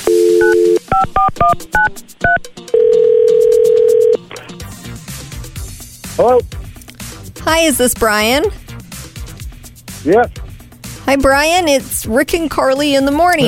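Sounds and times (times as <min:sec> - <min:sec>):
long steady telephone ringback tone: 0:00.0 - 0:00.8, 0:02.7 - 0:04.2
touch-tone telephone dialing beeps: 0:00.0 - 0:04.2
speech: 0:01.4 - 0:02.0, 0:07.6 - 0:08.6, 0:10.0 - 0:10.4, 0:11.1 - 0:13.4.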